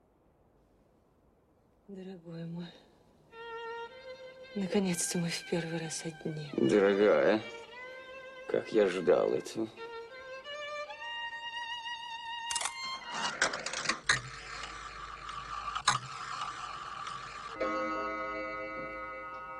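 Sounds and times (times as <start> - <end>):
speech: 1.9 - 2.9, 4.5 - 7.6, 8.5 - 9.9
clock mechanism whirring: 12.5 - 19.5.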